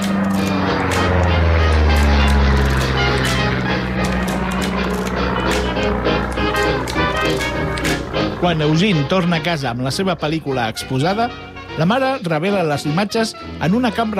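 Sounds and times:
propeller airplane roaring at a local aerodrome: 0.0 - 14.1
speech: 8.4 - 14.1.

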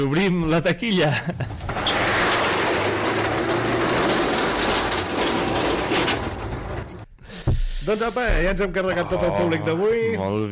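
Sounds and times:
speech: 0.0 - 1.8, 7.9 - 10.4
washing machine running: 1.5 - 7.0.

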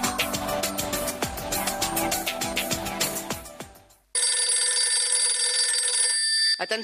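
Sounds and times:
busy percussive music: 0.0 - 4.0
telephone bell ringing: 4.2 - 6.8
speech: 6.6 - 6.8.

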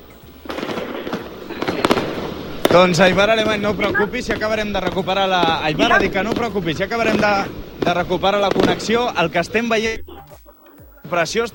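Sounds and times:
firecrackers going off at a crowded street party: 0.0 - 11.5
steady noise at a street party: 0.0 - 11.5
speech: 2.8 - 10.1, 11.1 - 11.5.

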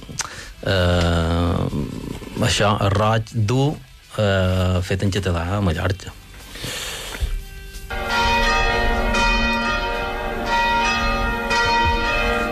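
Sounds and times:
speech: 0.6 - 1.4, 2.4 - 6.2
church bells ringing: 7.9 - 12.4.

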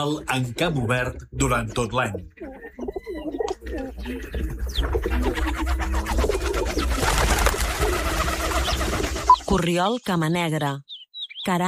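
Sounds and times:
speech: 0.0 - 8.2, 9.5 - 11.6
scattered chirps: 1.6 - 11.6
rock dove cooing: 2.0 - 9.4.

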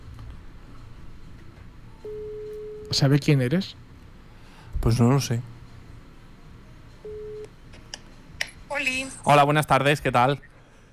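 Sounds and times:
low steady hum: 0.0 - 10.9
telephone call ring tone: 2.0 - 3.0, 7.0 - 7.5
speech: 2.9 - 3.8, 4.8 - 5.5, 8.8 - 10.5.

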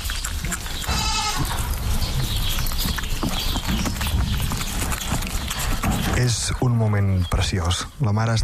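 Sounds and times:
mother goat licking and cleaning her newborn kid: 0.0 - 5.8
goat bleat: 0.9 - 1.6
speech: 6.2 - 8.4.

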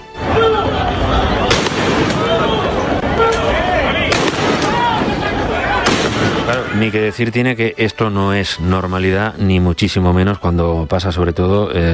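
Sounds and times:
people shouting: 0.0 - 6.8
constant roar of an agitated crowd: 0.0 - 7.0
babble of voices: 0.2 - 6.8
sharp loud warning gunshots during a street clash with police: 1.4 - 2.6, 3.3 - 6.8
speech: 6.8 - 11.9.

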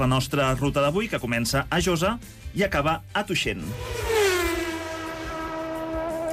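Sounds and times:
speech: 0.0 - 4.0
car passing by: 3.6 - 6.3.

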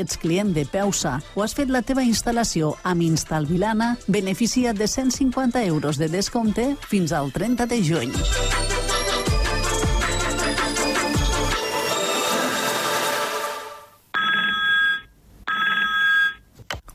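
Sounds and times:
speech: 0.0 - 8.9
music: 0.0 - 13.9
telephone ringing with a bright electronic trill: 14.2 - 16.5.

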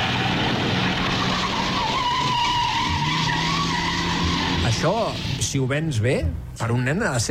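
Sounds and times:
tires squealing in a long rising skid: 0.0 - 5.6
car engine roaring while speeding in police chase: 0.0 - 6.6
steady road noise: 0.0 - 7.2
speech: 4.8 - 7.2.

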